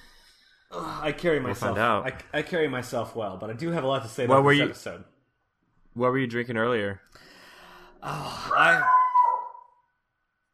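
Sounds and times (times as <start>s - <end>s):
speech: 0.7s - 5.1s, 6.0s - 7.3s, 8.0s - 9.0s
dog howling: 8.5s - 9.8s.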